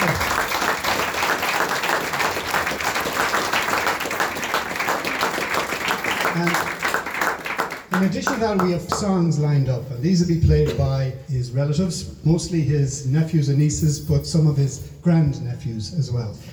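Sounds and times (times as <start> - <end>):
audience applauding: 0.0 - 9.0
speech: 8.0 - 16.5.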